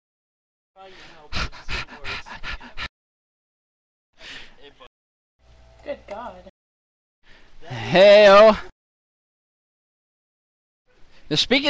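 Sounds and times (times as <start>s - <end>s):
speech: 0.8s - 2.2s, 5.9s - 6.5s, 7.6s - 8.7s, 11.3s - 11.6s
panting: 1.1s - 2.9s.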